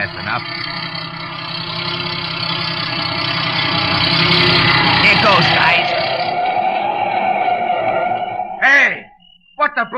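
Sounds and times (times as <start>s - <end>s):
speech: 0.0s - 0.7s, 5.1s - 5.8s, 9.8s - 9.9s
tape truck engine rumbling: 0.0s - 9.1s.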